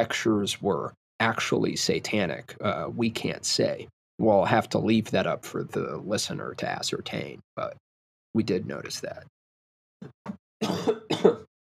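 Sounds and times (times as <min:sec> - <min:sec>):
speech: 0:00.0 - 0:09.4, 0:10.0 - 0:11.5
person clearing throat: 0:10.6 - 0:11.5
person coughing: 0:10.6 - 0:11.5.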